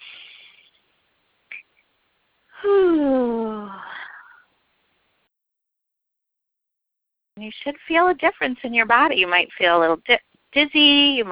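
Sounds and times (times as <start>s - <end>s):
soft airy inhale during breathing exercise: 0.0s - 0.8s
speech: 2.6s - 3.2s, 7.5s - 11.2s.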